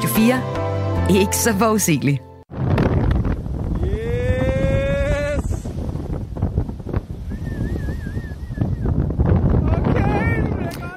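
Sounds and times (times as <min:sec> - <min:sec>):
speech: 0:00.1 - 0:02.3
roaring wind at a beach: 0:02.5 - 0:10.9.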